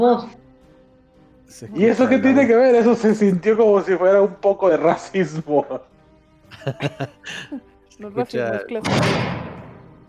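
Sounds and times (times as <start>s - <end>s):
speech: 0.0s - 0.4s, 1.5s - 5.9s, 6.6s - 9.5s
laughter: 6.5s - 7.7s
door slamming shut in a reverberant room: 8.8s - 9.8s.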